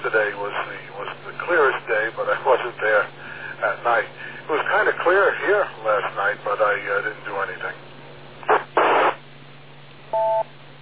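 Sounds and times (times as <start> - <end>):
radio static crackle on a narrow telephone-like channel: 0.0 - 7.8, 8.4 - 9.3
electronic two-tone beep after a radio transmission: 10.2 - 10.4.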